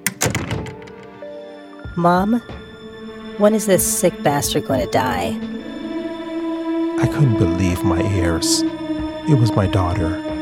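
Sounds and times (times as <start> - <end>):
hospital room door closing shut: 0.0 - 1.2
speech: 2.0 - 2.6, 3.4 - 5.7, 7.0 - 10.3.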